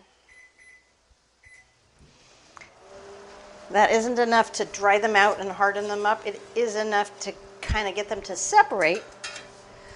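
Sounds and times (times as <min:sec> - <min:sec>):
microwave oven running with a steady low hum: 0:00.2 - 0:09.9
microwave oven keypad beeps: 0:00.3 - 0:01.8
speech: 0:03.7 - 0:09.2.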